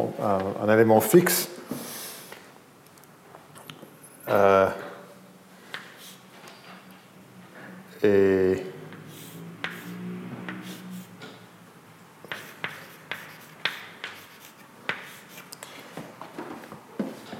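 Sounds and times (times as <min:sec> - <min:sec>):
speech: 0:00.0 - 0:01.8, 0:04.3 - 0:04.8, 0:08.0 - 0:08.7
writing strokes scratching: 0:09.0 - 0:11.2, 0:12.2 - 0:15.6.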